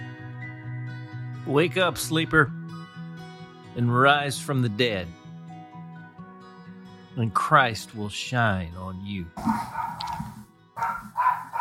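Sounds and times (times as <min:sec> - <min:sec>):
speech: 0:01.5 - 0:02.6, 0:03.8 - 0:05.2, 0:07.2 - 0:11.1
dog barking: 0:09.4 - 0:11.6.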